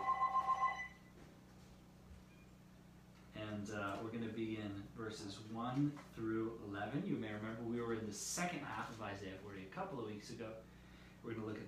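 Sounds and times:
telephone ringing: 0:00.0 - 0:01.0
speech: 0:03.6 - 0:11.6.

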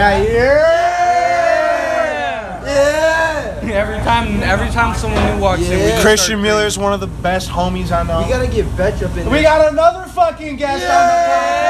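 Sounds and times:
speech: 0:00.0 - 0:00.7, 0:03.8 - 0:11.6
group of people yelling: 0:00.0 - 0:03.6, 0:10.6 - 0:11.6.

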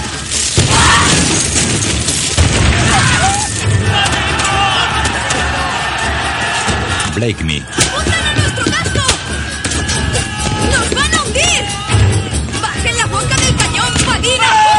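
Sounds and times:
grenades exploding in a ship's hold during a battle at sea: 0:00.0 - 0:05.5
crashing and clamor during a battle at sea: 0:00.0 - 0:14.7
speech: 0:07.2 - 0:08.2.

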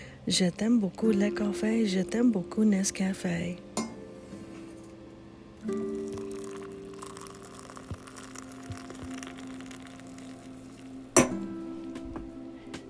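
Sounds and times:
speech: 0:00.3 - 0:03.7, 0:05.6 - 0:05.9
coffee cups clinking together in a toast: 0:06.0 - 0:10.4.

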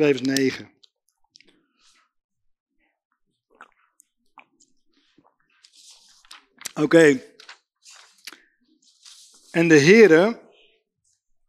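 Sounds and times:
speech: 0:00.0 - 0:00.8, 0:06.8 - 0:07.3, 0:09.5 - 0:10.4
person sipping water: 0:03.4 - 0:06.8
lip and tongue clicks: 0:03.5 - 0:04.8
squishy swallowing: 0:03.5 - 0:05.4.

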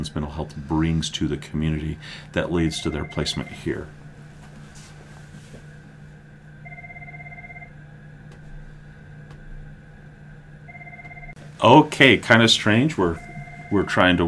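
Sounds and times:
speech: 0:00.0 - 0:04.0, 0:11.6 - 0:14.2
steady low hum: 0:00.0 - 0:14.2
telephone ringing in a two-tone electronic trill: 0:02.6 - 0:03.9, 0:06.6 - 0:07.8, 0:10.7 - 0:14.2.

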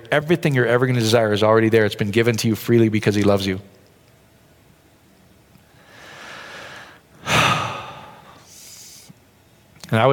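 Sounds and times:
speech: 0:00.0 - 0:03.8, 0:09.9 - 0:10.1
slow deep breathing in a calming relaxation exercise: 0:05.7 - 0:09.1.

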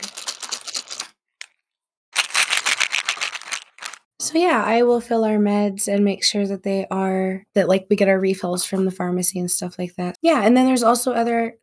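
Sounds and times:
loose pills rattling in a small plastic medication container: 0:00.0 - 0:01.2, 0:02.2 - 0:04.1
speech: 0:04.3 - 0:11.6.

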